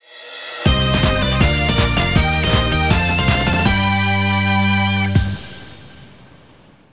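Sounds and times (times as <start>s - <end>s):
victory music: 0.7s - 6.7s.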